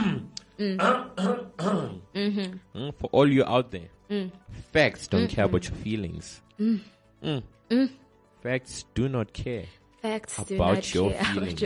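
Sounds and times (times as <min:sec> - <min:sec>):
person clearing throat in rumbling bursts: 0:00.0 - 0:02.1, 0:07.2 - 0:07.5
speech: 0:00.6 - 0:01.3, 0:02.4 - 0:11.6.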